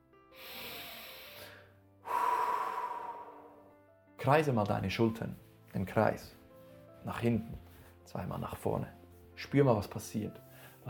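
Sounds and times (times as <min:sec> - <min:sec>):
deep human breath in and out: 0:00.3 - 0:03.7
speech: 0:04.2 - 0:06.4, 0:07.0 - 0:10.8.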